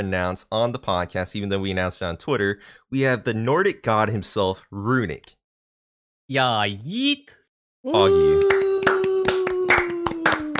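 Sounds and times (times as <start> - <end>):
speech: 0.0 - 5.4, 6.3 - 8.6
person clapping for himself: 8.0 - 10.5.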